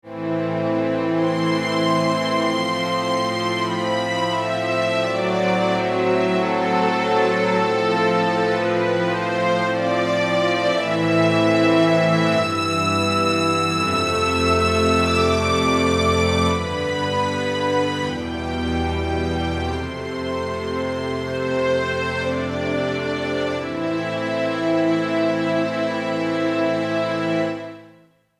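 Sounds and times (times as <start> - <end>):
majestic strings: 0.1 - 28.0.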